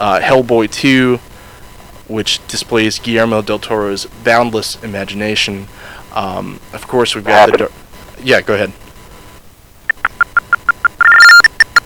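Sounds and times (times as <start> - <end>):
speech: 0.0 - 1.3, 2.1 - 8.8
telephone keypad tones after a dropped call: 9.9 - 11.8.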